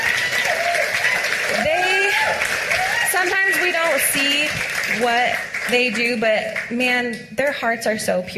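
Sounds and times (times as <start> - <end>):
audience applauding at a church service: 0.0 - 7.0
speech: 5.0 - 8.3.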